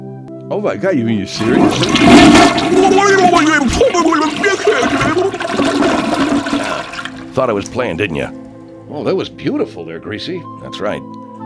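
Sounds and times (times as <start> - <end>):
speech: 0.5 - 11.2
toilet flushing: 1.3 - 8.9.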